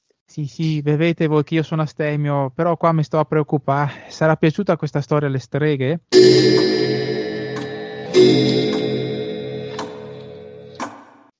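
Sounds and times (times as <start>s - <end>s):
speech: 0.4s - 6.7s
clock chimes striking the hour: 6.2s - 11.0s.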